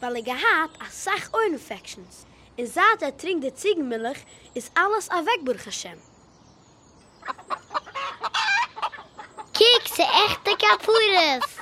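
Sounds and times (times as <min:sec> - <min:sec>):
speech: 0:00.0 - 0:06.1, 0:09.9 - 0:11.5
small chickens clucking: 0:07.0 - 0:11.5.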